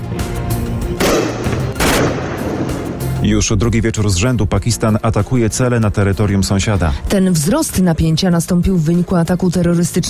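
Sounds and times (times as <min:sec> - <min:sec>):
low rumbling gunfire-like activity outdoors in a city: 0:01.0 - 0:02.8
loud explosive blasts in a city during missile attacks: 0:01.0 - 0:03.2
speech: 0:03.2 - 0:10.0.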